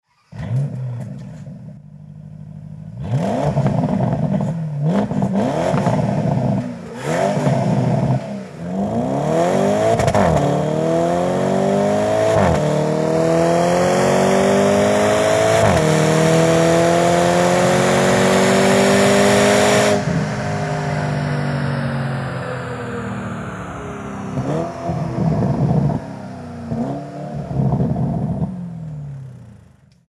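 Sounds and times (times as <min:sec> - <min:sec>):
stock exhaust of Porsche Panamera Turbo 971: 0:00.3 - 0:30.0.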